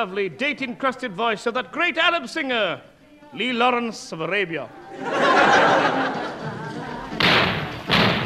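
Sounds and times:
speech: 0.0 - 6.2
laughter: 4.8 - 7.2
loud explosions: 7.2 - 8.2.

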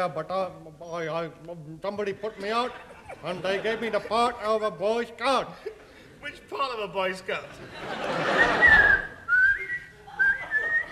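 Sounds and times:
speech: 0.0 - 9.0
laughter: 2.2 - 6.3, 7.4 - 10.8
shrill whistle bursts: 8.4 - 10.8.

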